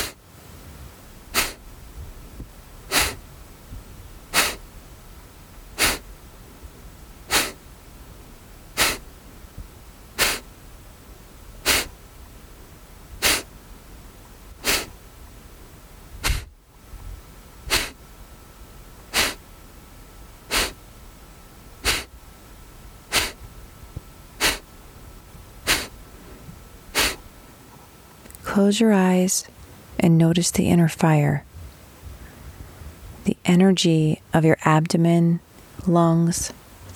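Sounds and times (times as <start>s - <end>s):
forceful Kapalabhati breathing exhales during a breathing meditation: 0.0s - 0.2s, 1.3s - 1.6s, 2.9s - 3.2s, 4.3s - 4.7s, 5.7s - 6.1s, 7.3s - 7.6s, 8.8s - 9.1s, 10.2s - 10.5s, 11.6s - 12.0s, 13.2s - 13.5s, 14.6s - 15.0s, 16.2s - 16.6s, 17.7s - 18.0s, 19.1s - 19.4s, 20.5s - 20.8s, 21.8s - 22.1s, 23.1s - 23.4s, 24.4s - 24.7s, 25.6s - 26.0s, 26.9s - 27.2s
speech: 28.6s - 31.5s, 33.5s - 36.9s.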